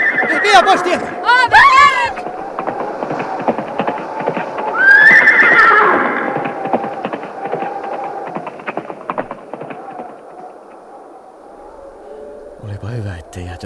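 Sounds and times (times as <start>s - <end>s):
horse neighing: 0.0s - 3.2s, 4.8s - 6.9s
galloping horse hooves: 0.0s - 12.6s
speech: 0.5s - 2.3s.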